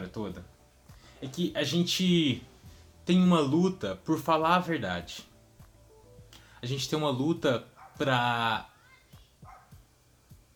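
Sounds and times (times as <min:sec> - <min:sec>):
speech: 0:00.0 - 0:00.6, 0:01.2 - 0:02.5, 0:03.1 - 0:05.3, 0:06.6 - 0:08.7
low hum: 0:00.0 - 0:10.5
dog barking: 0:07.8 - 0:08.1, 0:09.4 - 0:09.8.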